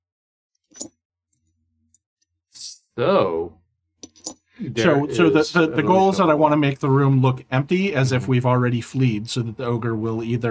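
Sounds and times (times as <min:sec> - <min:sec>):
metallic clinks of coins dropping: 0:00.6 - 0:02.1, 0:04.0 - 0:04.5
speech: 0:03.0 - 0:03.6, 0:04.6 - 0:10.5.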